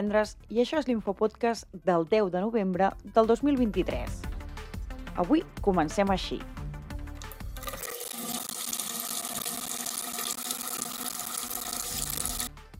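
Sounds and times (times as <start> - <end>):
speech: 0.0 - 4.3, 5.2 - 6.6
water running from a faucet at full flow: 7.2 - 12.5.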